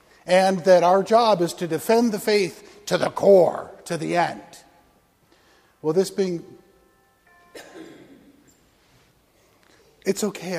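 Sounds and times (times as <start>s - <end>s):
speech: 0.2s - 4.6s, 5.8s - 6.6s, 7.6s - 7.9s, 10.1s - 10.5s
bell ringing: 6.1s - 8.9s.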